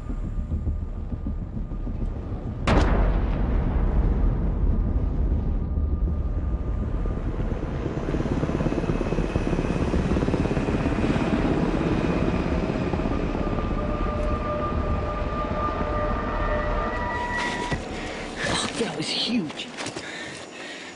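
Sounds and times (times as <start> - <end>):
helicopter rotors rumbling: 0.0 - 19.7
sharp bang: 2.6 - 5.0.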